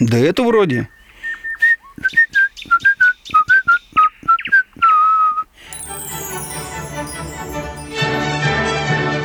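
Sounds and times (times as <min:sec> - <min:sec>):
person whistling a quick bouncy folk tune: 0:00.9 - 0:08.1
instrumental music playing loudly: 0:05.7 - 0:09.2.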